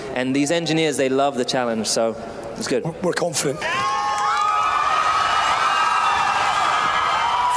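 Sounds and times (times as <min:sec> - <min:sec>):
speech: 0:00.2 - 0:04.0
large crowd cheering and shouting: 0:03.6 - 0:07.5
whoops: 0:03.6 - 0:07.5.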